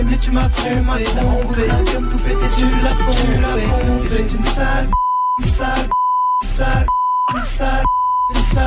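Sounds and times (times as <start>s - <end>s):
sung or rapped vocals over music: 0.0s - 8.6s
speech: 0.1s - 8.6s
censor beeps over song lyrics: 4.9s - 8.4s.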